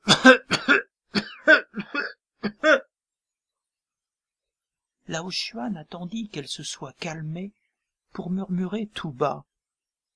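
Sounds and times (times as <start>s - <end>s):
harsh violent coughing fit: 0.0s - 2.9s
speech: 0.2s - 0.6s, 5.2s - 7.6s, 8.2s - 9.5s.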